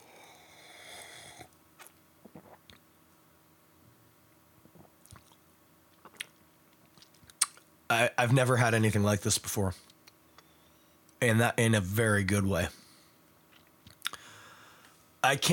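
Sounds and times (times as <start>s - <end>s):
slurping sip of a peach-flavored drink: 0.0s - 2.8s
swallow: 1.1s - 2.8s, 4.6s - 5.4s
wet mouth clicks: 1.8s - 2.8s, 4.7s - 7.7s, 13.5s - 14.2s
lip smacks: 4.7s - 7.7s, 13.5s - 14.2s
speech: 8.0s - 9.9s, 11.2s - 12.8s, 15.2s - 15.5s.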